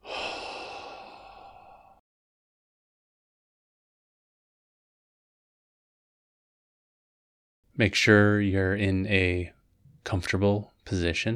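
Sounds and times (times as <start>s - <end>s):
deep breath out: 0.0s - 2.0s
speech: 7.8s - 11.3s.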